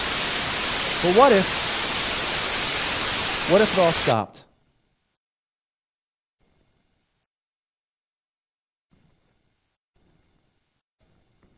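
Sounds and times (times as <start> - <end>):
white noise static: 0.0 - 4.2
speech: 1.0 - 1.6, 3.5 - 4.4.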